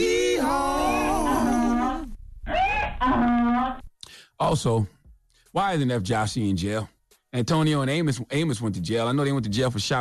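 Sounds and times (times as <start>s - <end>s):
donkey braying: 0.2s - 3.9s
speech: 4.5s - 9.9s.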